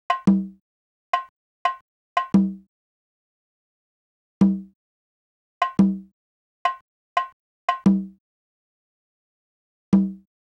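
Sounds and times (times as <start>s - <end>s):
percussion in E minor: 0.1s - 0.6s, 1.2s - 2.7s, 4.4s - 4.8s, 5.6s - 6.1s, 6.7s - 8.2s, 10.0s - 10.3s.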